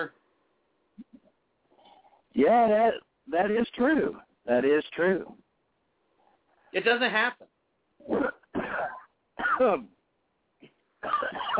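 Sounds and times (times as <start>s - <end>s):
speech: 0.0s - 0.2s, 2.4s - 5.4s, 6.7s - 10.0s, 11.0s - 11.5s
hoarse throaty coughs: 8.1s - 9.9s, 11.0s - 11.5s.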